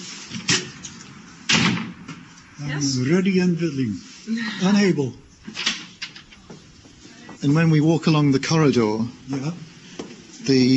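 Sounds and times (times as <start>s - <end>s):
door opening mechanism triggered by wrist bracelet: 1.5s - 2.0s
speech: 2.6s - 5.6s, 7.4s - 9.7s, 10.4s - 10.7s.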